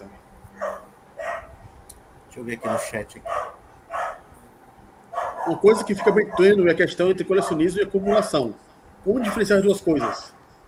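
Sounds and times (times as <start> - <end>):
dog barking: 0.6 - 1.6, 2.6 - 4.3, 5.1 - 6.7, 7.3 - 8.5, 9.2 - 10.6
speech: 2.4 - 3.3, 5.5 - 10.4.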